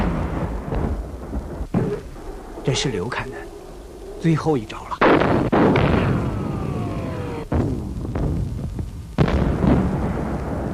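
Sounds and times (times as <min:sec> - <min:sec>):
artillery shelling blasts in wartime: 0:00.0 - 0:02.7, 0:05.0 - 0:10.7
speech: 0:02.7 - 0:03.5, 0:04.2 - 0:05.3
falling whistle of an artillery shell: 0:06.3 - 0:07.5.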